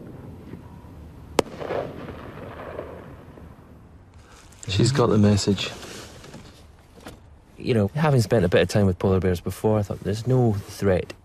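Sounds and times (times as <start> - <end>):
quiet outdoor ambience: 0.0 - 11.2
gun firing a blank round into the air to drive off a polar bear: 1.4 - 3.4
speech: 4.7 - 5.9, 7.6 - 11.2.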